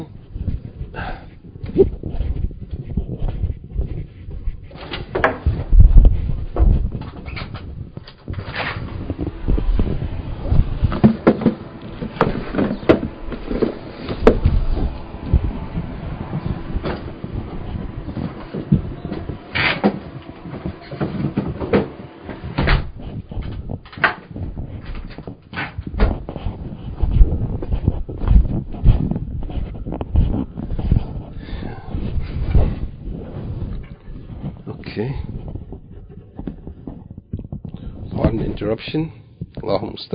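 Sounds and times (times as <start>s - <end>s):
thumps and rattles: 0.0s - 38.7s
low rumbling background: 0.0s - 40.1s
shuffling footsteps: 0.0s - 40.1s
door opening and closing for a package delivery: 6.5s - 26.3s
speech: 38.6s - 40.1s.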